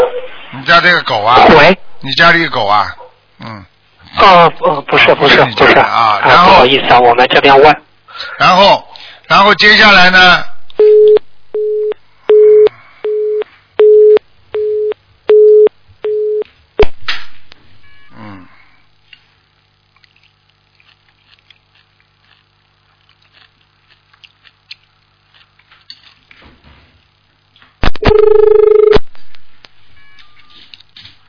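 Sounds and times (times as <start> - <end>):
speech: 0.5 - 11.2
telephone busy signal after a dropped call line: 10.8 - 16.4, 28.0 - 29.0.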